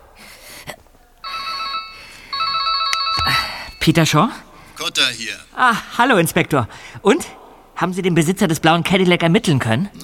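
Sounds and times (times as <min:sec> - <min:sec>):
mobile phone ringing with a bright electronic melody: 0:01.2 - 0:04.2
speech: 0:03.8 - 0:10.0.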